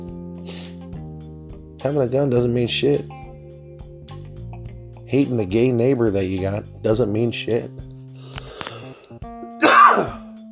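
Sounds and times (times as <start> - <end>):
speech: 1.8 - 3.2, 5.1 - 7.9
harsh rough cough: 9.6 - 10.3.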